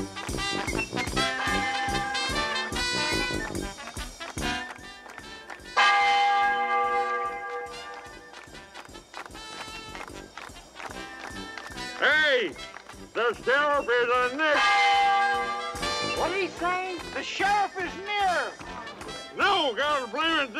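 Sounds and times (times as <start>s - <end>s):
steady rhythmic clatter: 0.0s - 20.5s
church bells ringing in resonant strikes: 1.2s - 3.2s, 5.8s - 8.5s, 14.0s - 19.4s
speech: 13.3s - 14.8s, 16.3s - 18.1s.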